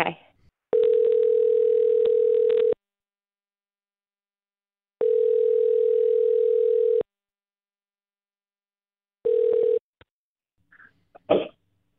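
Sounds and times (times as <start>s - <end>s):
phone ringback tone through the earpiece: 0.7s - 2.8s, 5.0s - 7.0s, 9.2s - 9.8s.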